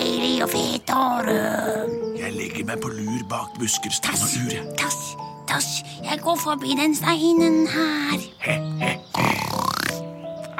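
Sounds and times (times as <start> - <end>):
soft steady tonal background: 0.0 - 9.1
speech: 0.4 - 9.4
fat pig grunting as it lies down: 8.4 - 10.5.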